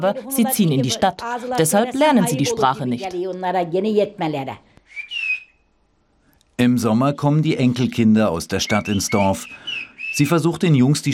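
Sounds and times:
speech: 0:00.0 - 0:05.0, 0:06.6 - 0:11.1
human whistling a whistled language phrase: 0:04.9 - 0:05.6, 0:08.7 - 0:10.4.

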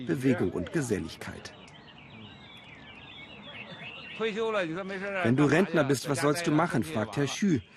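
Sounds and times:
speech: 0:00.0 - 0:01.7, 0:04.2 - 0:07.7
low murmur: 0:00.0 - 0:07.7
several songbirds chirping and warbling: 0:00.0 - 0:07.7.

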